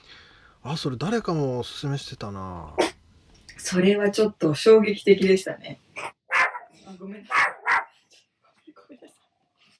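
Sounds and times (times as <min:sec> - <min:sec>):
speech: 0:00.6 - 0:02.9, 0:03.6 - 0:06.2, 0:07.0 - 0:07.5
pet dog barking: 0:06.0 - 0:08.0.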